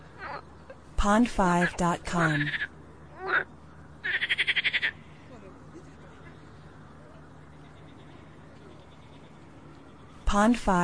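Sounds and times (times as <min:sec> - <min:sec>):
frog croak: 0:00.1 - 0:00.8, 0:02.3 - 0:05.1
speech: 0:01.0 - 0:02.6, 0:10.3 - 0:10.8.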